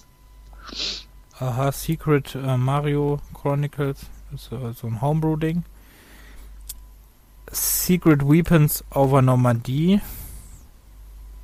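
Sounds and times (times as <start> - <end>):
quiet room hum: 0.0 - 11.4
person sneezing: 0.6 - 1.1
speech: 1.4 - 5.7, 7.5 - 10.2.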